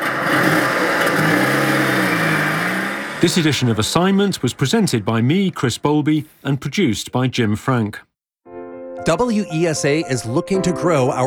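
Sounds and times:
petrol car engine revving: 0.0s - 5.1s
speech: 3.2s - 8.1s, 9.0s - 11.2s.

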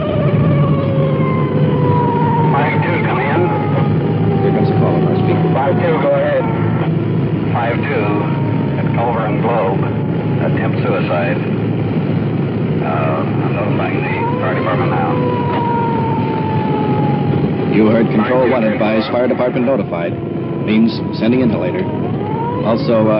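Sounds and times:
police car siren wailing while driving code 3: 0.0s - 23.1s
speeding car engine and road roar: 0.0s - 23.1s
voices or radio chatter: 2.4s - 11.6s, 12.8s - 15.9s, 17.6s - 21.9s
speech: 18.1s - 23.1s.

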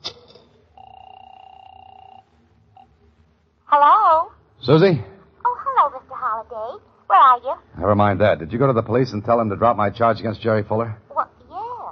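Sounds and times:
ring tone over a telephone line: 0.7s - 3.0s
speech: 3.7s - 4.0s, 4.7s - 5.1s, 7.1s - 11.0s.

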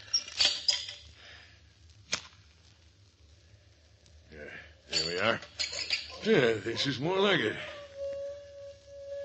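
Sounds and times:
match struck to light an oil lamp: 2.0s - 2.5s
match scraped and struck: 2.0s - 2.6s
speech: 5.1s - 5.6s, 6.2s - 7.7s.

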